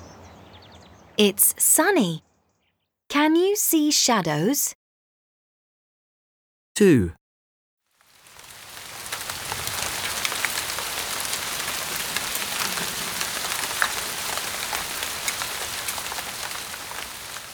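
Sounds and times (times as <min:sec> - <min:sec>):
speech: 0:01.2 - 0:02.2, 0:03.1 - 0:04.8, 0:06.8 - 0:07.2
rain falling on a surface: 0:08.0 - 0:17.5.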